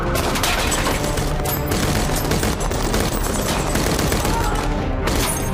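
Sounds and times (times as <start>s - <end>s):
rapid burst of gunfire: 0.2s - 5.4s.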